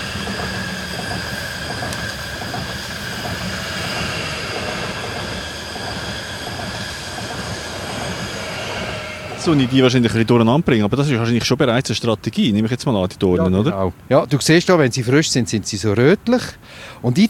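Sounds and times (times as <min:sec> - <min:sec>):
faint metallic whine of a passing train: 0:00.0 - 0:11.8
train wheels rumbling on rails: 0:00.0 - 0:12.3
speech: 0:09.4 - 0:17.2.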